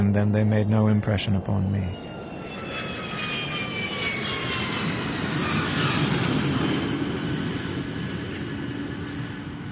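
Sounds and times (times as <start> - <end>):
airplane engine drone in the cabin in flight to England: 0.0 - 9.7
speech: 0.2 - 2.1.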